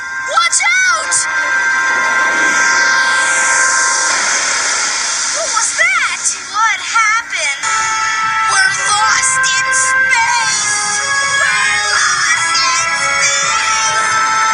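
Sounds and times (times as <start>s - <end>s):
rocket blast-off roar: 0.0s - 6.6s
excited voices chattering and whooping: 0.0s - 14.4s.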